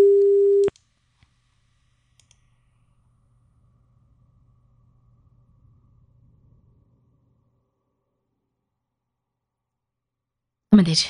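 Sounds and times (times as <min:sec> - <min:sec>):
telephone busy tone after a call-in line drops: 0:00.0 - 0:00.7
click cutting off a telephone busy tone: 0:00.2 - 0:01.3, 0:02.2 - 0:02.4.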